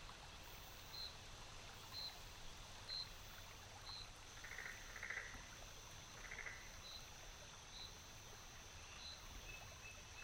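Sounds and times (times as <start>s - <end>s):
steady low rumble and soft hiss in a forest: 0.0s - 10.2s
soft calls or croaks: 4.4s - 5.4s, 6.2s - 6.7s.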